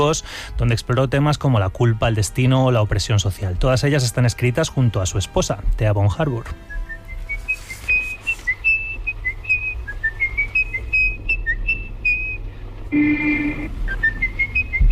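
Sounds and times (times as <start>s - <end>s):
speech: 0.0s - 6.7s
constant low hum: 0.0s - 14.9s
person whistling a melody from a film: 6.6s - 14.9s.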